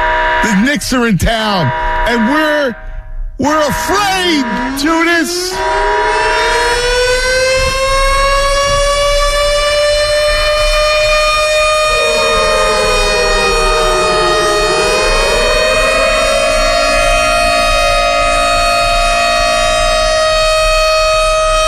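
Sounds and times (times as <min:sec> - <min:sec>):
speech: 0:00.4 - 0:02.8, 0:03.4 - 0:06.8
loud civil-defense siren wailing: 0:01.4 - 0:21.6.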